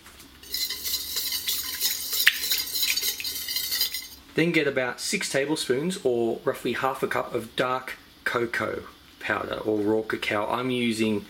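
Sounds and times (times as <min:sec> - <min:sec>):
utensil stirring raw honey into a mixture: 0:00.4 - 0:04.2
speech: 0:04.4 - 0:11.2.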